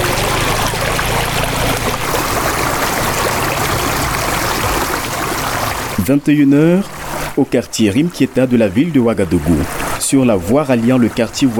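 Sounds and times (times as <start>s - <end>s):
low motor engine droning: 0.0s - 7.4s
rushing flowing water by a flooded bridge: 0.0s - 11.5s
speech: 6.1s - 11.5s.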